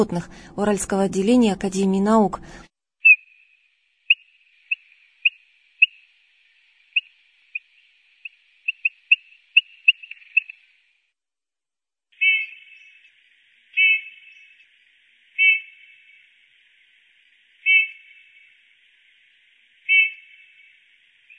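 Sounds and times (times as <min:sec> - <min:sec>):
speech: 0:00.0 - 0:02.7
Eurasian bullfinch calls with soft short piping whistles: 0:03.0 - 0:06.0, 0:07.0 - 0:10.6, 0:12.2 - 0:12.9, 0:13.8 - 0:14.5, 0:15.4 - 0:15.9, 0:17.6 - 0:18.2, 0:19.9 - 0:20.4.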